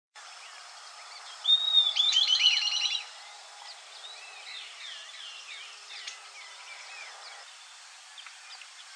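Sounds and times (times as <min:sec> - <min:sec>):
southern beardless tyrannulet Camptostoma obsoletum olivaceum calling: 0:01.4 - 0:03.1.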